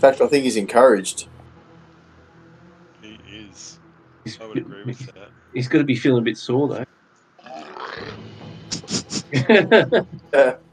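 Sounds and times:
speech: 0:00.0 - 0:01.4, 0:03.5 - 0:07.0, 0:09.3 - 0:10.6
laughter: 0:04.3 - 0:05.2, 0:08.8 - 0:10.6
long drawn-out guttural burp: 0:07.4 - 0:08.2.

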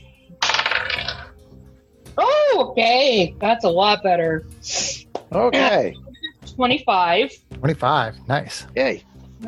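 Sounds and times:
dice rolled for a saving throw clattering across a hard surface: 0:00.4 - 0:01.3
speech: 0:02.6 - 0:06.0, 0:06.6 - 0:09.4.

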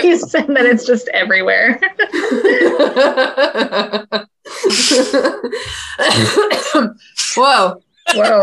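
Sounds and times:
speech: 0:00.0 - 0:08.4
person laughing rapidly and rhythmically: 0:01.9 - 0:06.5, 0:08.1 - 0:08.4
person coughing and clearing throat raspily: 0:05.8 - 0:07.0.

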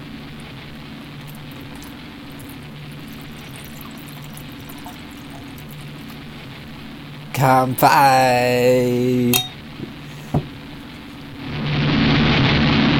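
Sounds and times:
low hum: 0:00.0 - 0:11.9
blood orange craft cider pouring into a glass: 0:00.7 - 0:11.1
speech: 0:07.4 - 0:09.6.

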